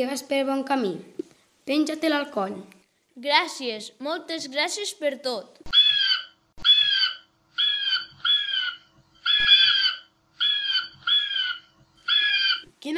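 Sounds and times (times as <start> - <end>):
speech: 0.0 - 5.8
eagle screeching: 5.7 - 12.7.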